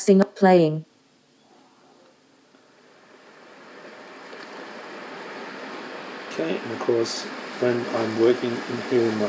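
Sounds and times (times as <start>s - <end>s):
speech: 0.0s - 0.9s, 6.4s - 9.2s
rain: 2.0s - 9.2s
ocean surf: 2.6s - 9.2s.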